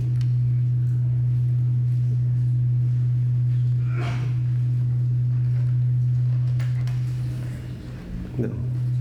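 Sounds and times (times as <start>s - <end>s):
loud steady low-pitched electrical hum: 0.0s - 8.9s.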